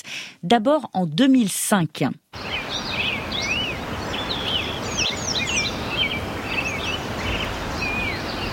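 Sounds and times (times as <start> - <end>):
speech: 0.4 - 2.5
flowing river water rushing: 2.4 - 8.5
many birds chirping and whistling in a chorus: 2.4 - 8.5.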